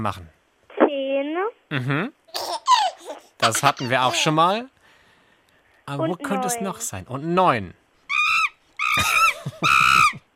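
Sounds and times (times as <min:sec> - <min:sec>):
speech: 0:00.0 - 0:00.4, 0:01.2 - 0:02.6, 0:03.4 - 0:04.8, 0:05.9 - 0:07.8, 0:09.0 - 0:09.8
monkey screeching as a sound effect in a matching memory game: 0:08.1 - 0:10.2.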